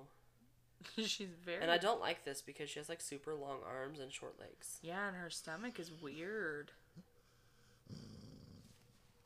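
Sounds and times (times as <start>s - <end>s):
speech: 0.8s - 7.1s
dog snoring: 6.9s - 8.8s.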